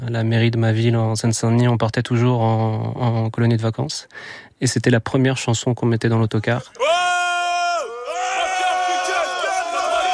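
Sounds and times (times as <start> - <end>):
speech: 0.0 - 7.2
person shouting a sustained cry opening a song: 6.7 - 10.1.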